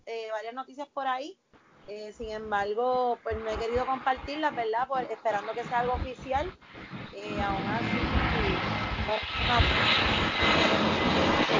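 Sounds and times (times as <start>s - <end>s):
speech: 0.4s - 8.0s, 9.1s - 10.9s
airplane engine roaring while passing overhead near an airport: 3.4s - 11.5s.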